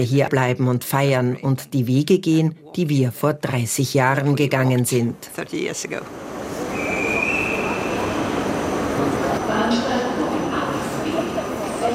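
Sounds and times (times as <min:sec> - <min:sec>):
speech: 0:00.0 - 0:06.6
steady rail rumble in a train station: 0:05.5 - 0:11.9
indistinct voices murmuring: 0:05.9 - 0:11.9.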